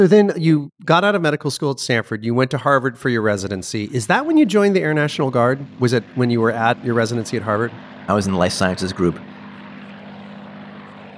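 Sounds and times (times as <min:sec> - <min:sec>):
speech: 0:00.0 - 0:09.3
vintage propeller warplane engine droning overhead: 0:02.3 - 0:11.1.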